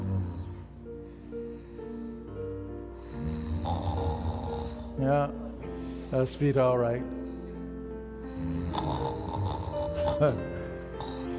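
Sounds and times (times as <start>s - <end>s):
man imitating loud rasping snoring: 0.0s - 0.7s, 3.1s - 5.1s, 8.3s - 10.4s, 11.0s - 11.3s
speech: 5.0s - 5.4s, 6.1s - 7.2s, 10.2s - 10.6s.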